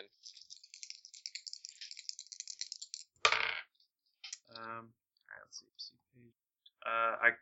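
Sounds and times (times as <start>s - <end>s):
dice rattling and clattering: 0.1s - 3.6s
dice landing thump: 3.3s - 3.6s
person speaking: 4.3s - 6.3s.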